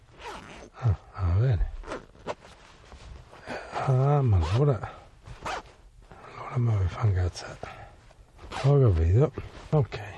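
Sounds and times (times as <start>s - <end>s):
zipper being pulled, getting stuck: 0.1s - 0.7s, 1.8s - 2.6s, 5.4s - 5.8s, 8.4s - 8.8s
speech: 3.9s - 5.0s, 6.6s - 7.7s, 8.6s - 10.1s.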